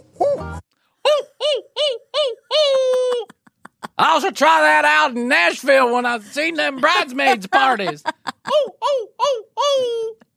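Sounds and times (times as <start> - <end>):
person imitating a hoot owl call: 0.2 - 3.4, 8.4 - 10.3
laughter: 2.5 - 4.3, 6.1 - 8.7
speech: 4.2 - 8.7.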